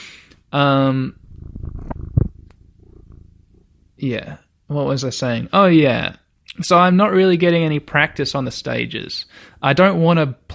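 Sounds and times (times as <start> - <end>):
speech: 0.5 - 1.2, 4.0 - 10.5
cat purring: 1.2 - 3.9.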